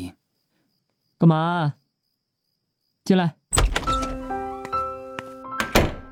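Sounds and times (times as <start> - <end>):
speech: 1.2 - 1.8, 3.1 - 3.6
bedroom door pushed open with dull thunks and knocks: 3.5 - 4.3, 5.6 - 6.1.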